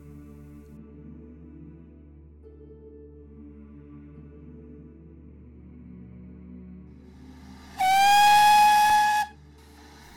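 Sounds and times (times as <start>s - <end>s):
train whistle blast with a hiss of steam: 7.8s - 9.4s.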